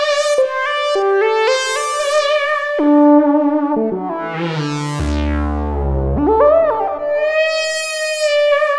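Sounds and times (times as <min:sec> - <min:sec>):
synth lead: 0:00.1 - 0:08.7.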